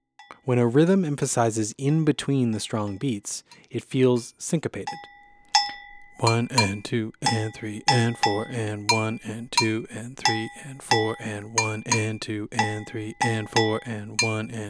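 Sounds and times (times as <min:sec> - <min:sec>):
speech: 0:00.5 - 0:05.2, 0:06.2 - 0:14.6
bright metal bell playing a West African bell rhythm: 0:04.9 - 0:14.6
person counting the beat: 0:06.2 - 0:14.6.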